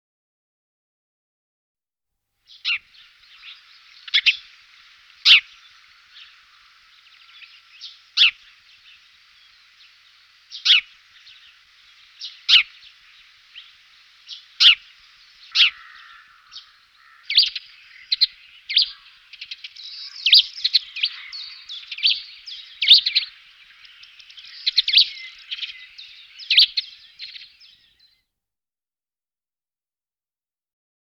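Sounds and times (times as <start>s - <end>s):
Eurasian tree sparrow singing: 2.5s - 28.1s.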